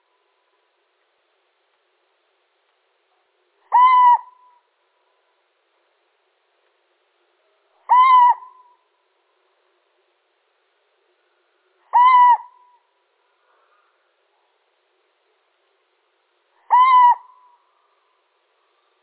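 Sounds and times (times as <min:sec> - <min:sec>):
male little owl calling: 0:03.6 - 0:04.7, 0:07.8 - 0:08.9, 0:11.8 - 0:12.9, 0:16.6 - 0:17.7.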